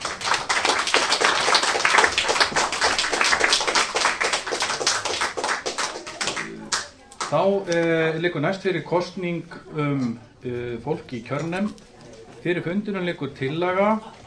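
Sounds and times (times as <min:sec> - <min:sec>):
audience clapping for the vote counters at a meeting: 0:00.0 - 0:07.4
speech: 0:07.3 - 0:14.2.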